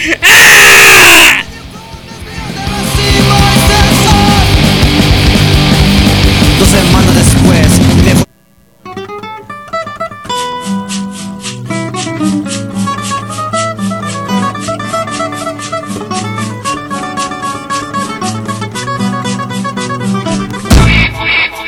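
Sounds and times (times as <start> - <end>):
person shouting a celebratory grito: 0.2 - 4.6
music: 1.1 - 21.6.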